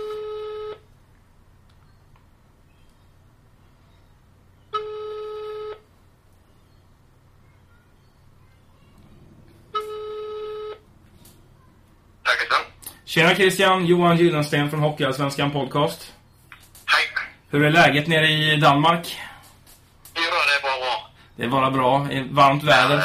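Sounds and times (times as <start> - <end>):
telephone ringback tone on speakerphone: 0.0 - 0.9, 4.7 - 5.9, 9.6 - 10.9
faint hum: 0.0 - 23.0
speech: 13.1 - 16.2, 17.5 - 19.3, 21.4 - 23.0.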